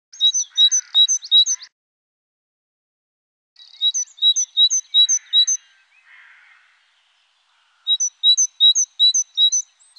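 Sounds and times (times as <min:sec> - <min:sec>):
great tit calling: 0:00.1 - 0:01.7, 0:03.6 - 0:09.9.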